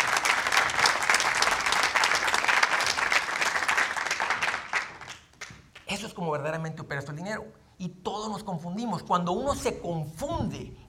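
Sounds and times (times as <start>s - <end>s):
crowd applauding: 0.0s - 5.9s
speech: 6.0s - 10.8s.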